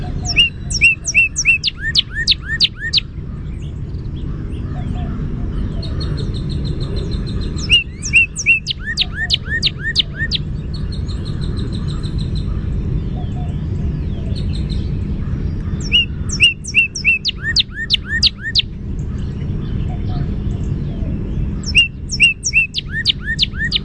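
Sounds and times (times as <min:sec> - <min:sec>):
Northern cardinal song: 0:00.0 - 0:03.1, 0:05.7 - 0:14.9, 0:15.8 - 0:18.7, 0:19.9 - 0:23.8
low rumbling background noise: 0:00.0 - 0:23.8.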